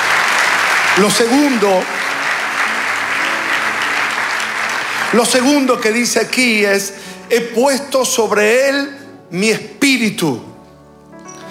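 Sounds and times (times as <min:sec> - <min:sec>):
congregation applauding: 0:00.0 - 0:11.4
speech: 0:01.0 - 0:02.0, 0:05.1 - 0:10.5.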